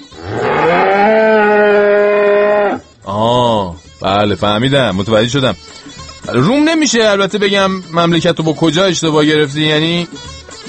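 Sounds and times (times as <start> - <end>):
cow mooing: 0.0 - 2.9
speech: 4.2 - 5.7, 6.3 - 10.3.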